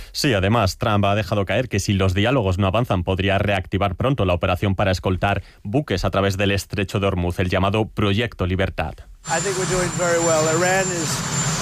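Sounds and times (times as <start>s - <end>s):
speech: 0.2s - 11.6s
helicopter engine running: 9.2s - 11.6s.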